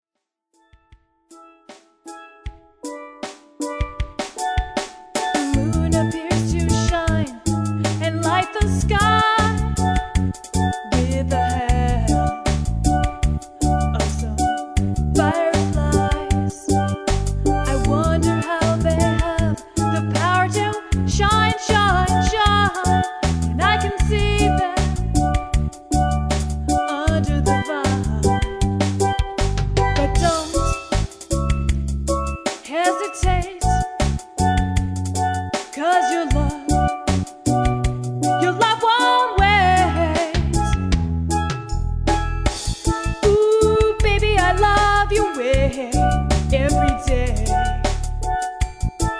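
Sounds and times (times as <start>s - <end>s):
solo steel pan playing: 1.4s - 49.1s
person singing: 5.3s - 9.6s, 10.9s - 12.3s, 13.7s - 16.9s, 17.7s - 25.3s, 26.7s - 28.5s, 30.0s - 30.9s, 32.7s - 33.8s, 35.7s - 37.0s, 38.4s - 40.7s, 43.3s - 47.8s.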